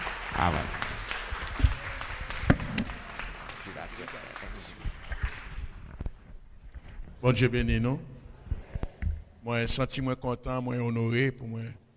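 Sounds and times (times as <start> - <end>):
church congregation applauding: 0.0 - 6.0
speech: 0.4 - 0.8, 4.0 - 4.9, 7.2 - 8.1, 9.4 - 11.8.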